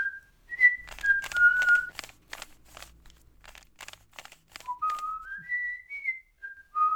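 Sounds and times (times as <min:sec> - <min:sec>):
girl whistling a bright bouncy tune: 0:00.0 - 0:01.9, 0:04.6 - 0:06.9.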